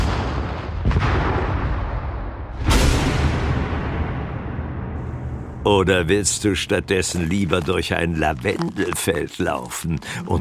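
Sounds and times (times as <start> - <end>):
heavy explosions: 0.0 - 5.0
speech: 5.7 - 10.3.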